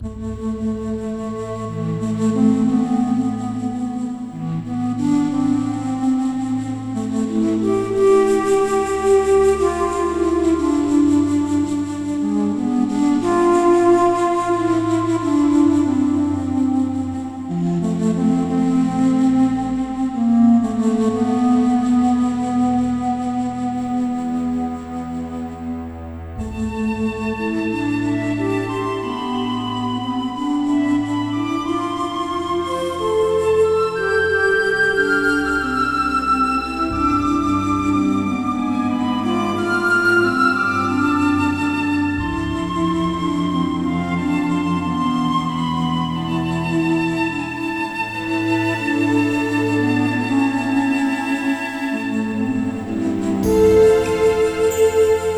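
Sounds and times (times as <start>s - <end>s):
romantic love theme music: 0.0s - 55.3s.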